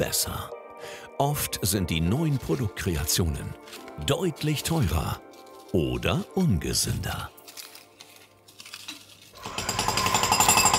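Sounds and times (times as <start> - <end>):
speech: 0.0 - 7.4
jackhammer hammering at a construction site: 9.4 - 10.7.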